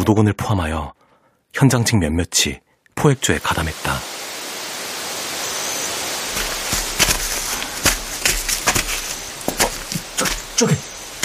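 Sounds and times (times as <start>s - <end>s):
speech: 0.0s - 4.1s, 10.6s - 10.9s
waterfall rushing: 3.2s - 11.2s
crunching footsteps: 6.0s - 11.2s
twigs snapping: 6.3s - 11.2s.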